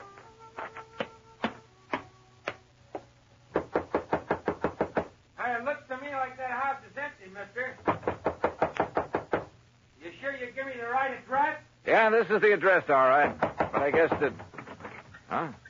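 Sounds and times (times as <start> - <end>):
firm knocking on the wooden front door of an old frame house: 3.5 - 5.1, 7.8 - 9.6, 13.2 - 14.6
speech: 5.6 - 8.0, 10.0 - 14.5, 15.3 - 15.6.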